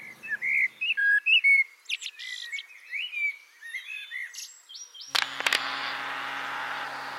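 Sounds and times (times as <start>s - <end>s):
blackbird singing: 0.0s - 5.2s
low hum: 5.1s - 7.1s.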